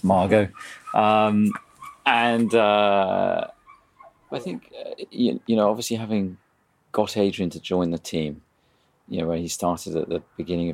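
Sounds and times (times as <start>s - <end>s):
speech: 0.0s - 3.6s, 4.3s - 8.5s, 9.1s - 10.7s
dog giving drawn-out howling barks: 0.6s - 2.7s.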